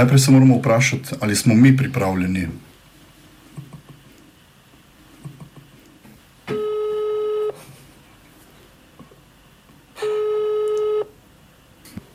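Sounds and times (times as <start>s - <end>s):
speech: 0.0s - 2.7s
telephone ringback tone of an unanswered call: 6.5s - 7.6s, 10.0s - 11.1s.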